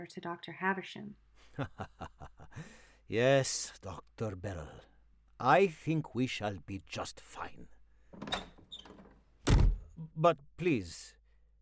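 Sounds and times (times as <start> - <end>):
speech: 0.0 - 8.6, 10.0 - 11.2
laughter: 1.5 - 2.7
main door hinge squeaks: 8.2 - 9.7
main door thud: 8.2 - 10.0.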